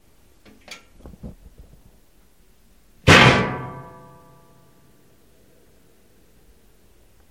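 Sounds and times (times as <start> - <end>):
metal falling: 3.1 - 4.3.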